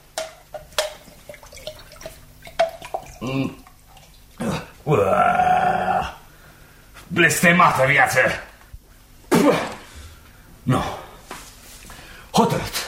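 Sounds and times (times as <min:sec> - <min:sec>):
drips: 0:00.2 - 0:04.8
water pouring into a container: 0:01.1 - 0:04.4
person grunting: 0:03.2 - 0:03.6, 0:04.4 - 0:06.2
speech: 0:03.2 - 0:03.7, 0:04.9 - 0:05.6, 0:07.1 - 0:08.5, 0:10.7 - 0:11.0.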